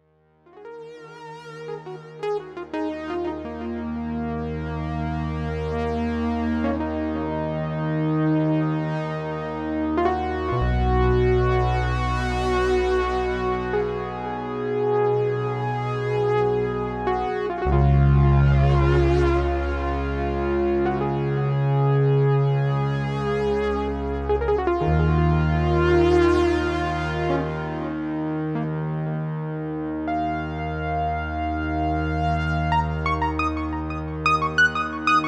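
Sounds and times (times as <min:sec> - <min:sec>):
expressive synthesizers: 0:00.5 - 0:35.2.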